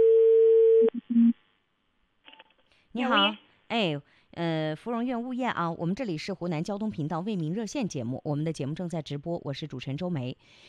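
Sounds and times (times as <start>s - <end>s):
telephone line tone on a call being dialled to a property management office: 0.0s - 1.3s
speech: 3.0s - 10.6s.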